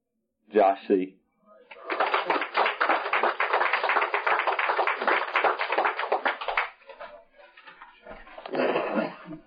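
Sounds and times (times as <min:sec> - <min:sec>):
speech: 0:00.5 - 0:01.2
crowd applauding as a speaker is introduced: 0:01.7 - 0:07.0.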